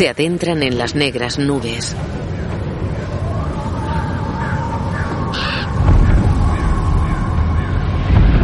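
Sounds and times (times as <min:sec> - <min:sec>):
speech: 0:00.0 - 0:02.2
loud rumbling low roar of a passing dragon: 0:01.9 - 0:08.4
flock of crows cawing in flight: 0:02.3 - 0:08.0.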